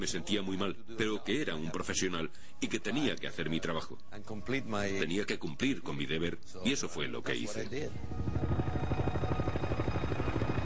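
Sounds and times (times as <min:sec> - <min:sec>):
speech: 0:00.0 - 0:08.3
Navy helicopter flying by at an accident site: 0:07.9 - 0:10.6.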